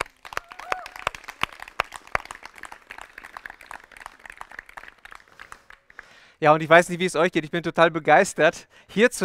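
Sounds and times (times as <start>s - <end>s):
crowd applauding: 0.0s - 6.3s
speech: 6.4s - 9.2s.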